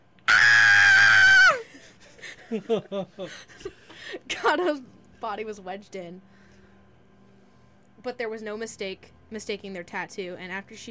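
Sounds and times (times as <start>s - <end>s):
woman screaming in fright: 0.3s - 1.7s
laughter: 1.7s - 4.2s
speech: 2.5s - 6.3s, 8.0s - 10.8s.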